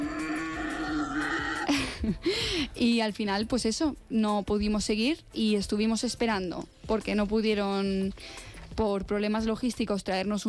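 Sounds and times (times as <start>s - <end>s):
wild boar squealing grunt: 0.0s - 1.7s
speech: 2.0s - 10.4s.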